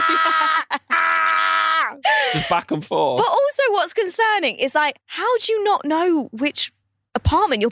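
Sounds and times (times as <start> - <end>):
person imitating screaming: 0.0 - 2.1
speech: 0.1 - 0.8, 2.5 - 7.7.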